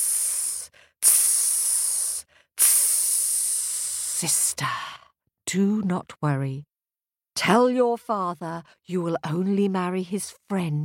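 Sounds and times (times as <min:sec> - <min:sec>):
voice imitating a snake's hiss: 0:00.0 - 0:04.2
speech: 0:04.2 - 0:04.9, 0:05.5 - 0:06.7, 0:07.4 - 0:10.8.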